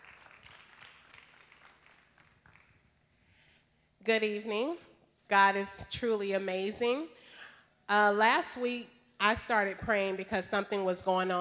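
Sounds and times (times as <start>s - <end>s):
audience clapping: 0.0s - 3.0s
speech: 4.0s - 7.2s, 7.9s - 11.3s.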